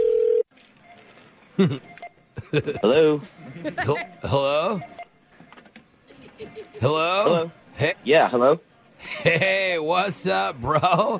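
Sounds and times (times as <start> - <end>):
telephone dialing tone: 0.0 - 0.5
laughter: 1.6 - 4.8, 6.0 - 7.6, 9.0 - 11.1
speech: 1.6 - 5.0, 6.5 - 11.1.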